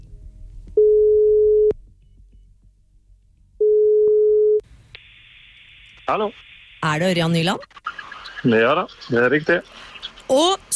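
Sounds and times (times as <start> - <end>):
telephone ringback tone while a call is placed: 0.8 - 1.7, 3.6 - 4.6
speech: 6.1 - 10.7.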